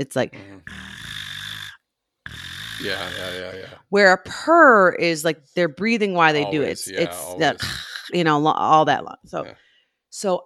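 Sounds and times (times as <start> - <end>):
speech: 0.0 - 0.9, 2.8 - 10.4
cat snoring: 0.6 - 3.7.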